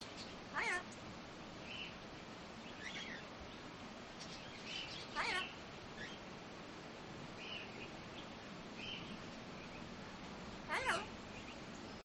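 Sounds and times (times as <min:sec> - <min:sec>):
background birds: 0:00.0 - 0:12.0
parrot chatter on an urban farm: 0:00.5 - 0:00.9, 0:04.2 - 0:06.1, 0:10.6 - 0:11.2.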